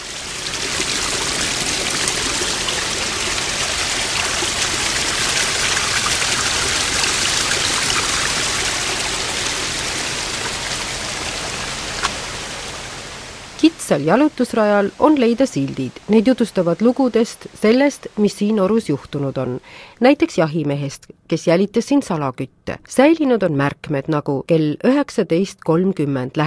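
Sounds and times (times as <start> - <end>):
mountain stream flowing over rocks in a gorge: 0.0 - 16.9
speech: 13.9 - 26.4.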